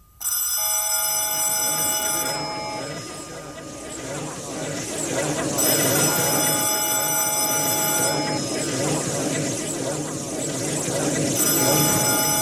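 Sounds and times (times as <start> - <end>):
telephone bell ringing with metallic trilling: 0.0 - 3.7, 5.6 - 8.4, 11.4 - 12.3
steady noise: 0.0 - 12.3.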